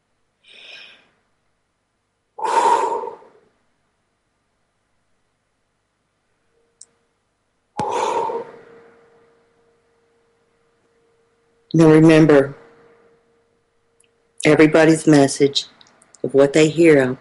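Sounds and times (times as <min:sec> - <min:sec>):
deep breathing during a guided calming exercise: 0:00.4 - 0:01.2, 0:02.4 - 0:03.6, 0:07.8 - 0:09.0
faint click: 0:06.8 - 0:07.0
speech: 0:11.7 - 0:12.6, 0:14.4 - 0:17.1.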